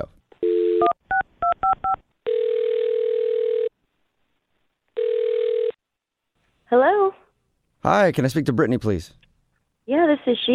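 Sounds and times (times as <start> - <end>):
telephone dial tone: 0.4 - 3.7, 5.0 - 5.8
speech: 7.8 - 9.2, 10.1 - 10.5.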